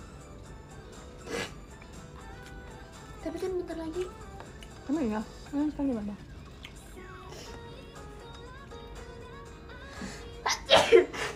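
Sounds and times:
person sneezing: 1.2s - 1.6s, 10.0s - 11.3s
speech: 3.3s - 4.3s, 4.9s - 6.3s.

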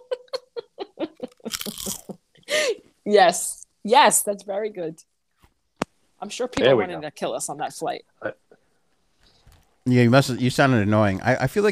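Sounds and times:
voice imitating crunching potato chips: 1.5s - 2.2s
speech: 3.1s - 5.1s, 6.2s - 8.4s, 9.8s - 11.7s.

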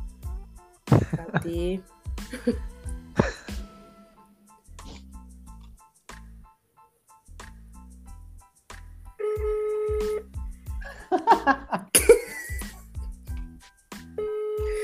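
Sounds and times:
laughter: 0.9s - 1.6s, 10.8s - 12.6s
speech: 0.9s - 3.4s
phone call tones of a call being dialed again: 9.2s - 10.3s, 14.2s - 14.8s.

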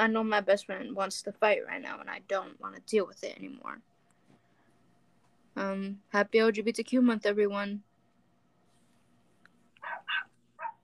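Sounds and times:
speech: 0.0s - 3.9s, 5.6s - 7.9s
low steady hum: 0.0s - 10.8s
dogs barking: 9.8s - 10.8s.

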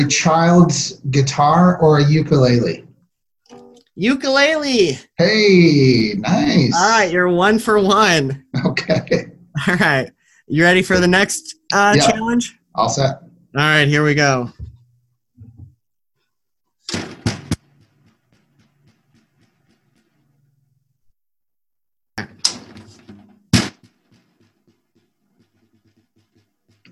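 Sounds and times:
speech: 0.0s - 2.8s, 4.0s - 14.6s
broken snare drum being struck: 16.9s - 20.2s, 22.2s - 26.9s.

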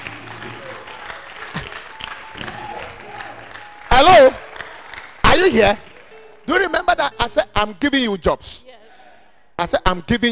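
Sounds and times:
small audience clapping weakly and unevenly: 0.0s - 6.3s
speech: 5.5s - 5.9s, 6.5s - 8.6s, 9.6s - 10.3s.

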